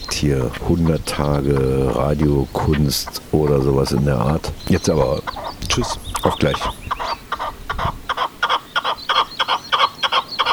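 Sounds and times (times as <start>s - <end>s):
red-legged partridge giving rapid harsh chuffing calls: 0.0s - 10.5s
speech: 0.2s - 6.8s.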